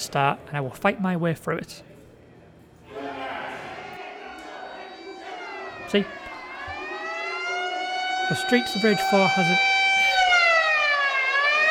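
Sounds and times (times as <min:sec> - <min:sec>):
speech: 0:00.0 - 0:01.9, 0:05.9 - 0:06.2, 0:08.3 - 0:09.7
alarm siren wailing: 0:03.9 - 0:11.6.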